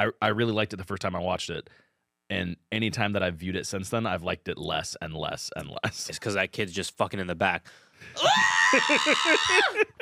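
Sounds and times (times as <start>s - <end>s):
speech: 0.0s - 10.0s
person mimicking a child's shrill sustained scream: 8.2s - 9.8s.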